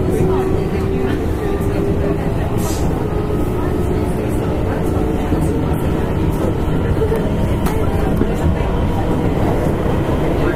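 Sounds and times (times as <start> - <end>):
electric train wheels and track rumbling: 0.0 - 10.5
faint voices murmuring inside an electric train: 0.0 - 10.5.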